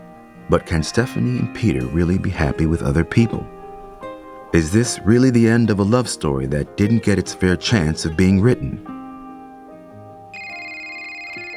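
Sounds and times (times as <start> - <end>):
soft music: 0.0 - 11.5
speech: 0.5 - 3.5, 4.5 - 9.0
bright electronic phone ringtone: 10.4 - 11.5.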